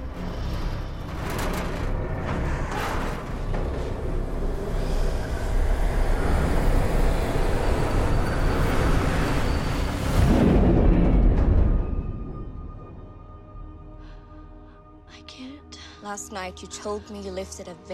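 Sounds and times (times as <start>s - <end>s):
train rumbling along tracks: 0.0s - 12.2s
speech: 16.1s - 17.9s.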